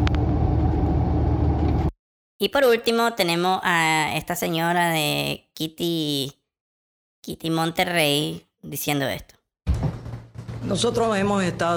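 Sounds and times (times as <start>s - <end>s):
car engine rumble inside a moving car: 0.0s - 1.9s
road drone inside a moving car: 0.0s - 1.9s
speech: 2.4s - 6.4s, 7.2s - 9.4s, 10.6s - 11.7s.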